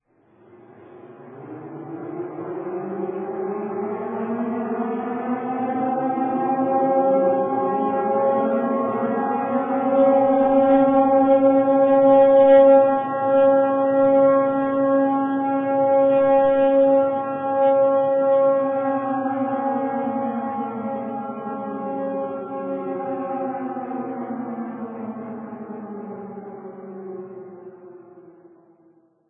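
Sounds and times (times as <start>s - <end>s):
air raid siren: 0.3s - 29.2s.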